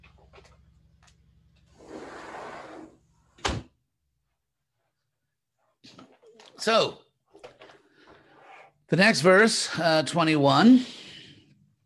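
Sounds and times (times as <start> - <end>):
door being closed: 3.4 - 3.7
speech: 6.6 - 7.0, 8.9 - 11.0.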